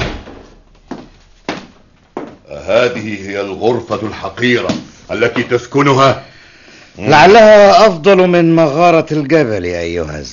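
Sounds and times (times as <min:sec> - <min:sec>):
door slamming shut in a humble dwelling: 0:00.0 - 0:00.6
speech: 0:02.5 - 0:06.3, 0:07.0 - 0:10.3.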